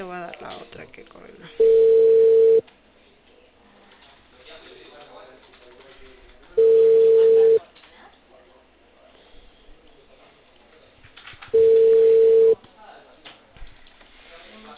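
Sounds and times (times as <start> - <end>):
speech: 0.0 - 2.0
ringback tone of an outgoing phone call ringing out unanswered: 1.6 - 2.6, 6.6 - 7.6, 11.6 - 12.6.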